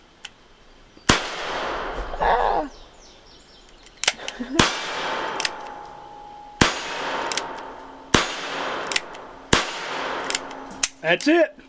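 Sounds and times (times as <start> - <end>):
low noise: 0.0 - 11.6
pistol shots fired at targets on a cowboy-style shooting range: 1.1 - 2.2, 4.0 - 6.0, 6.6 - 11.0
speech: 2.2 - 2.8, 11.1 - 11.6.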